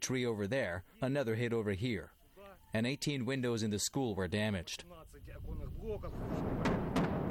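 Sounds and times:
speech: 0:00.0 - 0:07.2
dull booms of outgoing artillery fire: 0:06.1 - 0:07.2.

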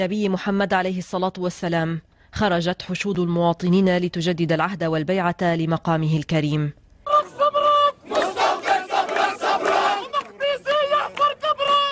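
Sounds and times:
speech: 0:00.0 - 0:06.8
large crowd chanting slogans in unison: 0:07.1 - 0:11.9.

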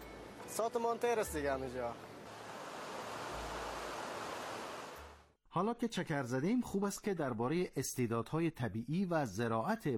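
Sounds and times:
speech: 0:00.6 - 0:02.1, 0:05.5 - 0:09.9
Baharistan river rushing in Baharak Badakhshan: 0:02.3 - 0:05.2.

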